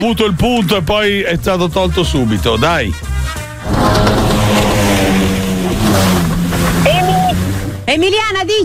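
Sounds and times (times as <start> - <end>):
speech: 0.0 - 4.7, 7.9 - 8.6
jet ski engine roaring past: 3.6 - 8.6.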